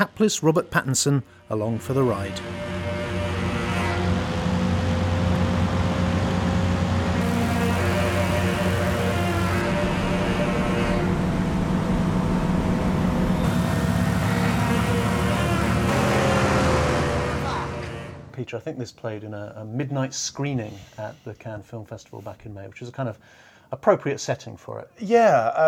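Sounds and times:
speech: 0:00.0 - 0:02.7, 0:18.5 - 0:25.6
car engines revving: 0:01.6 - 0:18.4.

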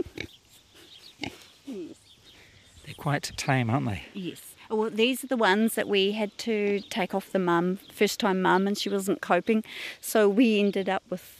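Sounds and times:
hand-raised piglets grunting and squealing: 0:00.0 - 0:02.0
speech: 0:03.0 - 0:11.3.

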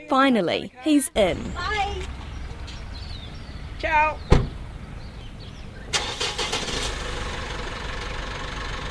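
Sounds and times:
speech: 0:00.1 - 0:01.9, 0:03.8 - 0:04.4
car engine cranking and starting: 0:02.1 - 0:08.8.

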